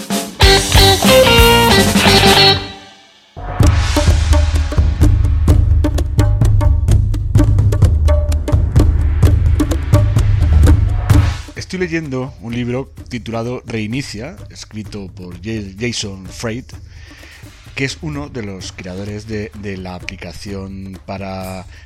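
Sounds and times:
instrumental music with punchy beat and heavy bass: 0:00.0 - 0:11.6
speech: 0:11.8 - 0:16.9, 0:17.8 - 0:21.8.

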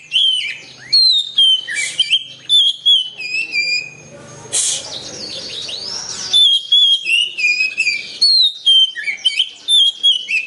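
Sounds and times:
Oriental magpie-robin song of drawn-out sliding whistles: 0:00.0 - 0:10.4
hiss: 0:04.5 - 0:04.9.

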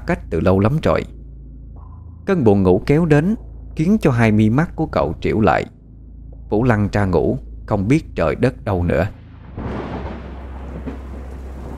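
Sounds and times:
speech: 0:00.0 - 0:01.2, 0:02.3 - 0:05.8, 0:06.5 - 0:09.7
faint low rumble: 0:00.0 - 0:11.7
heavy rain at night: 0:09.2 - 0:11.7.

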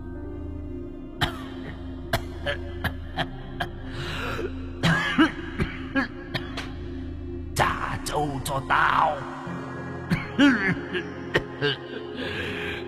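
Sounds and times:
old man coughing: 0:01.2 - 0:03.3, 0:04.8 - 0:06.7, 0:10.1 - 0:11.8
speech: 0:02.4 - 0:04.6, 0:08.1 - 0:09.4, 0:10.4 - 0:12.6.

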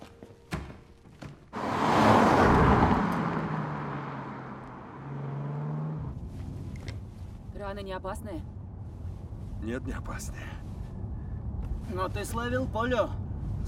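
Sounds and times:
car driving off: 0:01.5 - 0:07.2
speech: 0:07.7 - 0:08.6, 0:09.6 - 0:10.7, 0:11.9 - 0:13.6.

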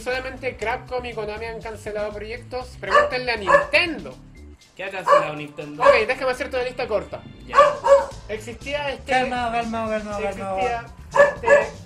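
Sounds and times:
speech: 0:00.0 - 0:11.7
dog barking: 0:02.9 - 0:03.9, 0:05.0 - 0:06.2, 0:07.5 - 0:08.2, 0:11.0 - 0:11.8.

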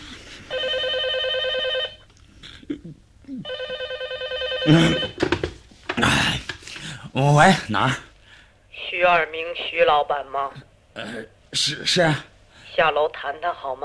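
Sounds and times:
telephone bell ringing: 0:00.5 - 0:02.0, 0:03.4 - 0:05.2
speech: 0:04.7 - 0:05.1, 0:07.2 - 0:08.1, 0:09.0 - 0:13.8
rustling and knocking: 0:05.0 - 0:06.8.

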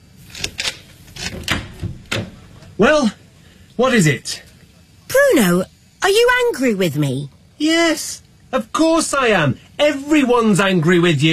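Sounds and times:
door latch clicking and rattling as a door is opened: 0:00.4 - 0:02.4
speech: 0:02.8 - 0:03.2, 0:03.8 - 0:04.5, 0:05.3 - 0:11.3.

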